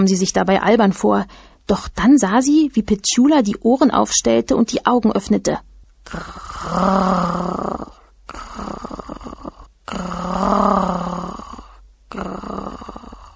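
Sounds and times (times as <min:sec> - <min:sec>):
speech: 0:00.0 - 0:09.0
girl's voice imitating a dog's growl: 0:06.0 - 0:13.3.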